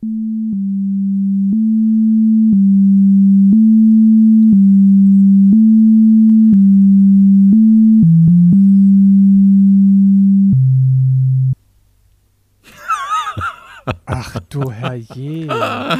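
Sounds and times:
simple melody of pure electronic sine tones: 0:00.0 - 0:11.6
laughter: 0:12.6 - 0:15.9
speech: 0:14.2 - 0:15.9.

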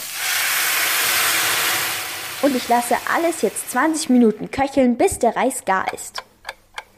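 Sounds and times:
broth poured into hot pan hissing: 0:00.0 - 0:04.2
speech: 0:02.4 - 0:06.2.

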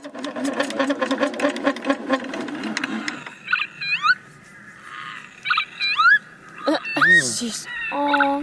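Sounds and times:
hand-cranked dynamo at an exhibit station whirring and rattling: 0:00.0 - 0:03.5
shrill rising lapwing calls: 0:02.0 - 0:08.4.

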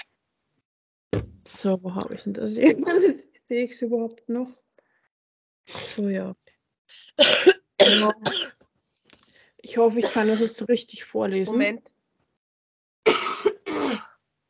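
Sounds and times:
speech: 0:01.2 - 0:04.6, 0:05.7 - 0:06.4, 0:07.2 - 0:08.6, 0:09.6 - 0:12.0
person with a cold coughing harshly: 0:07.2 - 0:08.5, 0:10.0 - 0:10.5, 0:13.1 - 0:14.1.

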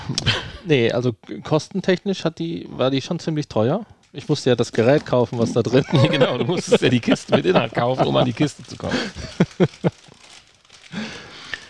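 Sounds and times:
speech: 0:00.1 - 0:10.0
puffed-up plastic snack bag from the Philippines crinkling: 0:04.1 - 0:11.6
laughter: 0:05.3 - 0:10.1.

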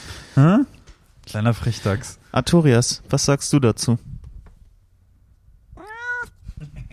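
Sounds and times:
speech: 0:01.3 - 0:04.1
cat meowing: 0:05.8 - 0:06.4.

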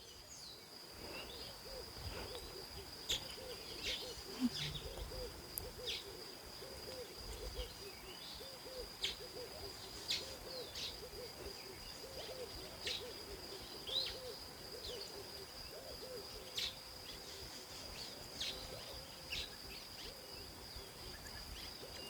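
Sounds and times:
many tropical bird species chirping: 0:00.0 - 0:15.1
constant high insect drone: 0:00.0 - 0:22.0
tropical birds hooting: 0:01.1 - 0:16.8.

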